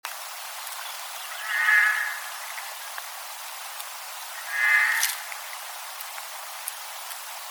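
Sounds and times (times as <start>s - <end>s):
quiet background hiss: 0.1s - 7.4s
Eurasian jay (Garrulus glandarius) giving harsh rasping screeches: 1.4s - 2.4s, 4.4s - 5.3s.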